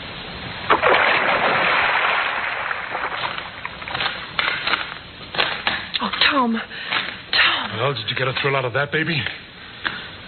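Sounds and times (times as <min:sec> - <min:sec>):
woman thrown into a river with a heavy splash: 0:00.7 - 0:04.6
smaller splashes in river water: 0:00.7 - 0:05.6
speech: 0:06.3 - 0:07.0, 0:07.7 - 0:09.4.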